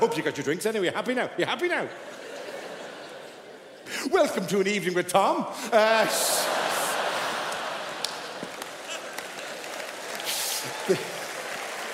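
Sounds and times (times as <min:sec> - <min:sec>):
speech: 0:00.0 - 0:02.3, 0:04.0 - 0:06.6, 0:10.9 - 0:11.1
laughter: 0:02.0 - 0:03.9, 0:05.7 - 0:11.6
audience cheering and whooping: 0:05.8 - 0:11.9
sharp claps: 0:07.2 - 0:11.9.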